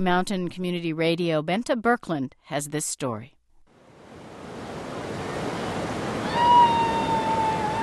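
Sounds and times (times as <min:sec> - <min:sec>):
speech: 0:00.0 - 0:03.4
river water rushing in Colorado: 0:03.8 - 0:07.8.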